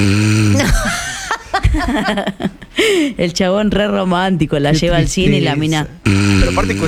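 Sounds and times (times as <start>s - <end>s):
person imitating a man snoring in a cinema: 0.0s - 1.2s, 6.0s - 6.8s
laughter: 0.6s - 2.8s
speech: 1.9s - 6.8s.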